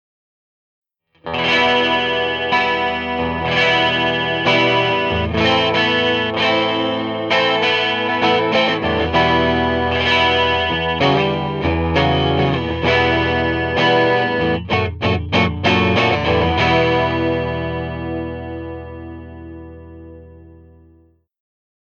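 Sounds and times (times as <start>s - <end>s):
Fender guitar: 1.2s - 21.2s.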